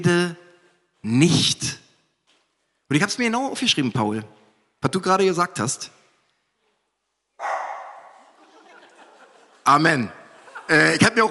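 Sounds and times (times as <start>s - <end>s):
speech: 0.0s - 0.4s, 1.0s - 1.8s, 2.9s - 6.0s, 9.6s - 11.2s
dog barking with a rough breathy rasp: 7.4s - 8.3s
laughter: 8.1s - 11.2s.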